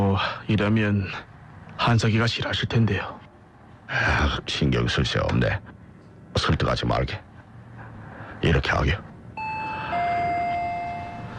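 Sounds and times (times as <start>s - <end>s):
speech: 0.2s - 3.2s, 3.9s - 7.3s, 8.4s - 9.1s
electronic doorbell two-tone chime: 9.4s - 11.3s.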